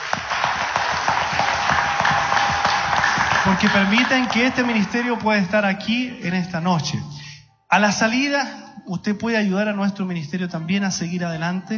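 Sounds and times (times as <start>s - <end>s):
church congregation applause at an evening ministry service: 0.0s - 6.2s
speech: 3.6s - 11.7s.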